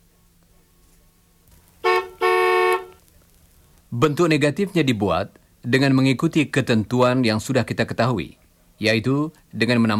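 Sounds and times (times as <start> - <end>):
car horn honking during a vehicle check: 1.8 - 3.0
speech: 3.9 - 9.9.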